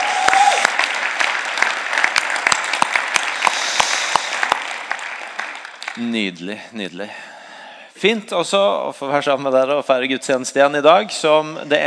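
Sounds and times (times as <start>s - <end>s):
room full of people applauding: 0.0s - 6.4s
speech: 6.0s - 7.3s, 8.0s - 11.8s.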